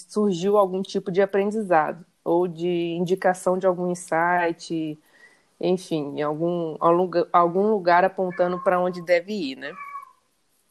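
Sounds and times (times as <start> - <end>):
speech: 0.0 - 9.9
cat meowing: 8.2 - 10.2.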